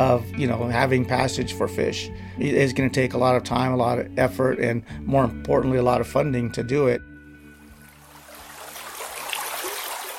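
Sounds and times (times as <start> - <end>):
speech: 0.0 - 7.1
mountain stream flowing: 7.5 - 10.1.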